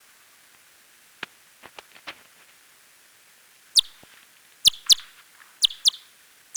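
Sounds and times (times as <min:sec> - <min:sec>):
large-footed myotis Myotis macropus echolocation calls: 0:03.8 - 0:04.0, 0:04.6 - 0:06.5.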